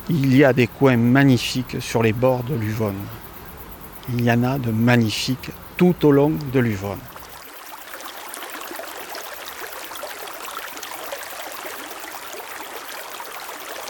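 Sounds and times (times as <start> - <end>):
river flowing below a bank: 0.0 - 13.8
speech: 0.1 - 3.2, 4.0 - 7.1.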